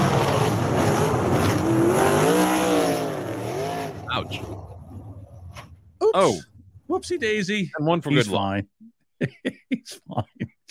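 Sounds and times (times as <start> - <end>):
wingless dirt track race car engine roaring: 0.0 - 7.5
speech: 6.1 - 10.6
laughter: 9.2 - 10.6.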